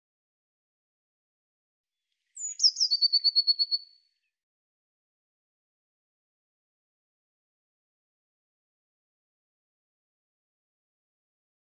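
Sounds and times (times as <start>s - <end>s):
Eurasian blue tit calling and trilling: 2.4s - 3.9s.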